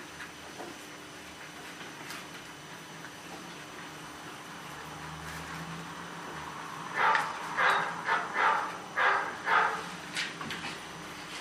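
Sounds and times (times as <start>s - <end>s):
small dog barking in high-pitched yaps: 7.0s - 9.9s.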